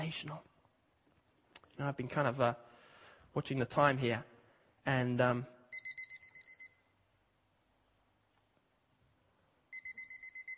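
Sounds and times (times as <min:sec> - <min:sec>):
speech: 0:00.0 - 0:00.5, 0:01.8 - 0:02.7, 0:03.4 - 0:05.6
alarm clock going off with rapid electronic beeps: 0:05.7 - 0:07.0, 0:09.7 - 0:10.5.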